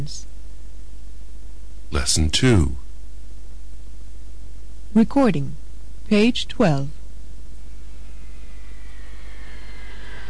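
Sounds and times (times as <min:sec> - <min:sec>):
speech: 0:02.0 - 0:02.8, 0:05.0 - 0:07.0
high jet engine whine: 0:07.5 - 0:10.2
jet airplane roaring overhead: 0:08.0 - 0:10.2.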